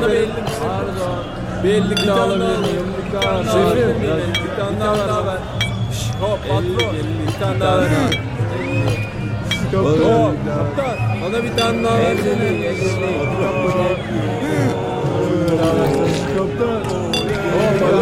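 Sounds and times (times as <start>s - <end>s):
murmur of many people talking: 0.0s - 18.0s
speech: 1.6s - 5.6s, 6.2s - 9.1s, 9.7s - 14.9s, 15.5s - 18.0s
glasses clinking in a toast: 1.8s - 10.2s, 11.4s - 12.4s, 16.9s - 17.9s
many people laughing: 11.7s - 16.4s.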